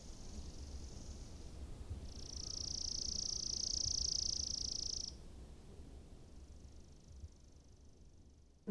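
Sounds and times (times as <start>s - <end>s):
chipping sparrow song with rapid high trill: 0.0s - 5.2s
soft low hum: 0.0s - 8.7s.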